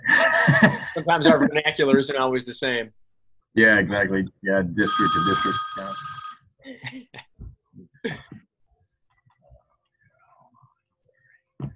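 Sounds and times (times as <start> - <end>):
laughter: 0.0 - 2.1
speech: 0.5 - 7.2
phone ringing in electronic bursts: 4.8 - 6.5.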